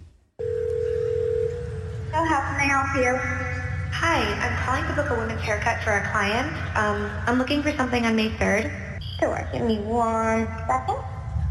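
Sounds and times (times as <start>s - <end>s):
steady telephone tone: 0.4s - 2.1s
speech: 2.3s - 11.1s.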